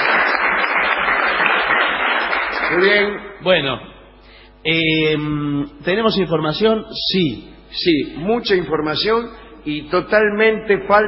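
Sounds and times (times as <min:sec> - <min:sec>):
man clapping for himself: 0:00.0 - 0:03.2
speech: 0:02.7 - 0:04.0, 0:04.6 - 0:11.0.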